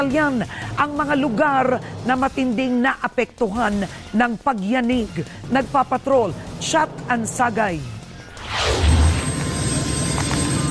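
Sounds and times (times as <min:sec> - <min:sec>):
speech: 0:00.0 - 0:08.6
Philippine Air Force helicopter flying out from an airport: 0:07.8 - 0:10.6.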